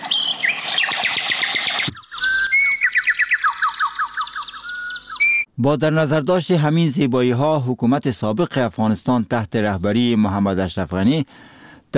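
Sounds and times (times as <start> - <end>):
birds trilling and chirping: 0.0 - 5.5
speech: 5.6 - 11.9.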